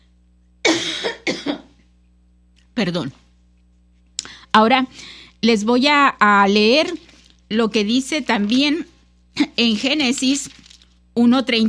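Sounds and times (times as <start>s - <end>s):
low steady hum: 0.0s - 11.6s
preacher coughing mid-sermon: 0.6s - 1.8s
speech: 2.8s - 3.3s, 4.5s - 10.6s, 11.2s - 11.6s.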